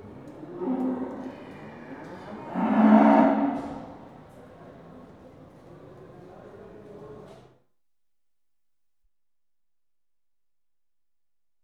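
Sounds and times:
cattle mooing in pens at a market: 2.3 - 3.6.

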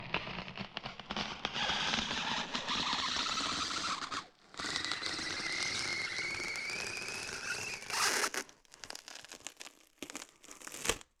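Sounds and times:
designed rubbery polystyrene squealing and squeaking, pitched up: 0.1 - 11.1.

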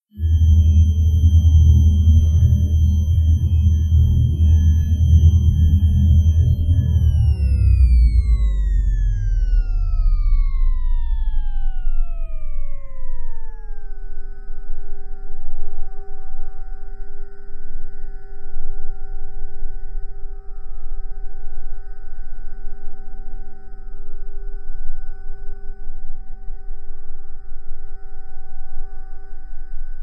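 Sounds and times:
generator powering down: 0.2 - 14.1.

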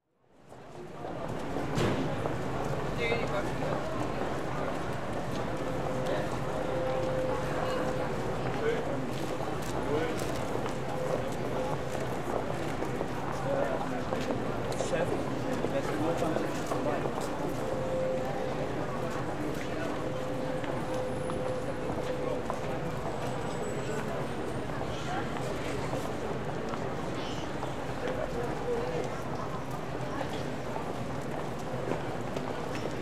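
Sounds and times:
pedestrian precinct ambience in Germany: 0.3 - 33.0.

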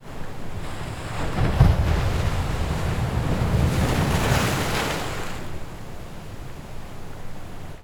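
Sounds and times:
medium wave splashing on rocks of the Black Sea: 0.0 - 7.8.

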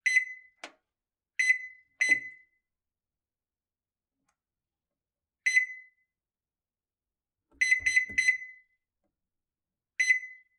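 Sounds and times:
microwave keypad beeps: 0.0 - 0.6, 1.4 - 2.5, 5.5 - 6.0, 7.6 - 8.7.

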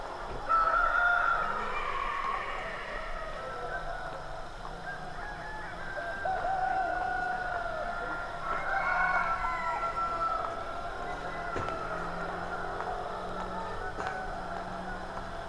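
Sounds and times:
constant background noise: 0.0 - 15.4
cockerel crowing at dawn in a rural South American village: 0.4 - 3.9, 4.8 - 15.4.

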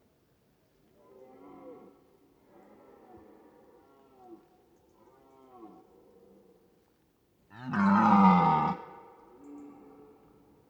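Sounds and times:
red deer roaring in autumn in a European mountain forest: 7.6 - 8.8.

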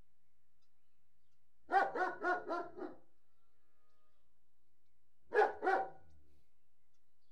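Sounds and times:
German Shepherd barking indoors: 1.7 - 3.1, 5.3 - 6.1.

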